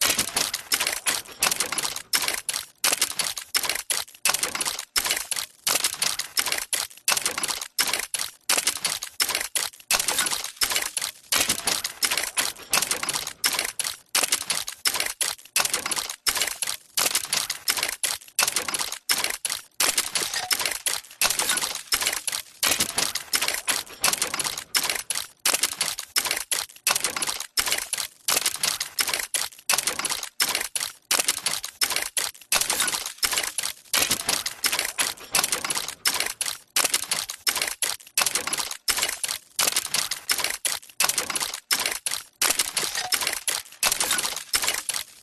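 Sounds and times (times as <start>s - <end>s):
steampunk mechanical loop: 0.0s - 45.2s.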